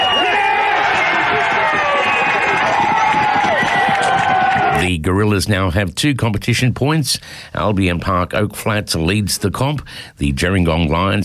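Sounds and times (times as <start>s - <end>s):
large home crowd roaring and cheering after a winning try: 0.0s - 4.8s
overlapping shouts and whoops: 0.0s - 4.8s
speech: 5.1s - 11.2s.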